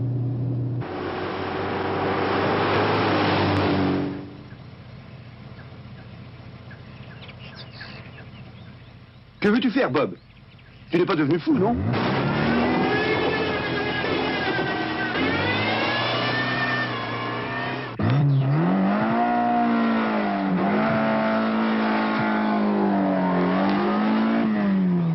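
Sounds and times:
Fiat 131 car engine revving and accelerating: 0.1s - 4.5s, 11.6s - 25.1s
speech: 9.5s - 10.3s, 10.9s - 12.2s.

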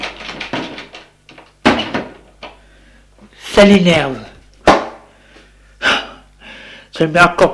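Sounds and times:
door handle rattled and door jiggled against its lock: 0.0s - 2.1s
speech: 3.6s - 4.3s, 7.0s - 7.5s
sharp loud thump: 4.6s - 5.1s.

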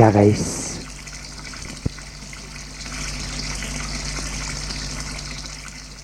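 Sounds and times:
speech: 0.0s - 0.7s
running water hissing like a shower spraying: 0.0s - 6.0s.

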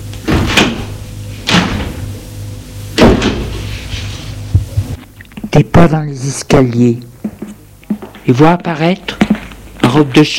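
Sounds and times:
low steady hum: 0.0s - 10.3s
doors opening with swish and clunk: 0.1s - 2.1s
speech: 5.6s - 7.1s, 8.2s - 9.2s, 9.9s - 10.3s.

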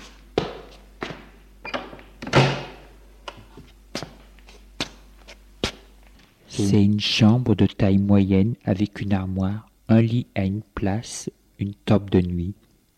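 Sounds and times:
door swinging open with a swishing creak in a corridor: 1.6s - 2.8s
speech: 6.6s - 12.7s.

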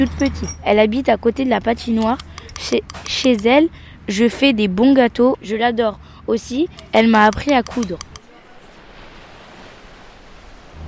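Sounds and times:
speech: 0.0s - 8.1s
beach surf with breaking waves: 6.7s - 10.8s.

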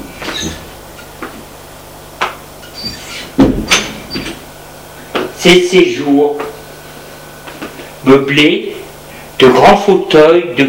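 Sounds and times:
faint hum: 0.0s - 10.6s
door knocks and clunks: 3.4s - 4.4s
speech: 5.4s - 6.5s, 8.1s - 8.7s, 9.4s - 10.6s.

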